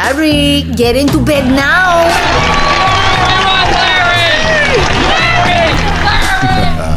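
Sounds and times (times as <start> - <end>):
speech: 0.2 - 2.4
large crowd cheering and whooping: 1.4 - 6.9
steady applause: 2.0 - 6.9.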